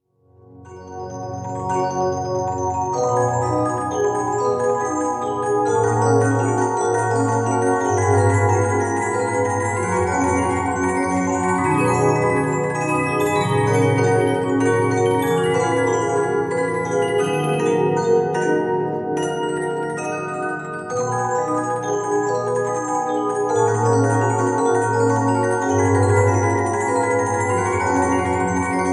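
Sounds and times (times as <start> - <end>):
music box playing a waltz: 0.7 - 28.9.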